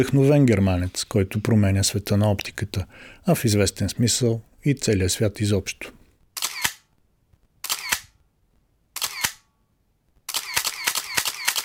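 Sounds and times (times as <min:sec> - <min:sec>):
speech: 0:00.0 - 0:06.0
paparazzi camera shutter clicks: 0:06.4 - 0:06.9, 0:07.6 - 0:08.2, 0:09.0 - 0:09.5, 0:10.3 - 0:11.6.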